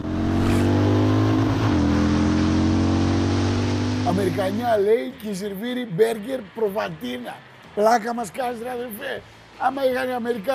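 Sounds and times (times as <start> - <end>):
motorcycle engine idling with throttle blipped: 0.0 - 4.8
speech: 4.1 - 10.5.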